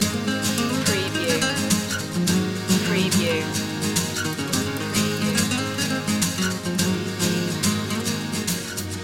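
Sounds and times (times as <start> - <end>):
guitar loop: 0.0 - 9.0.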